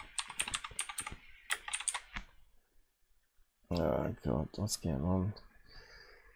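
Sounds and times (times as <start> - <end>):
typing on a computer keyboard: 0.0 - 2.2
speech: 3.7 - 5.5.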